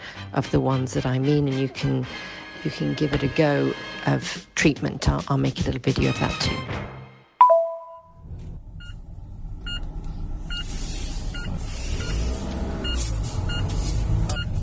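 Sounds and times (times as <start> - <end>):
speech: 0.3 - 6.9
car seatbelt warning chime: 7.4 - 8.2
low rumble of a running car engine: 8.2 - 14.6
car seatbelt warning beeps: 9.6 - 14.6.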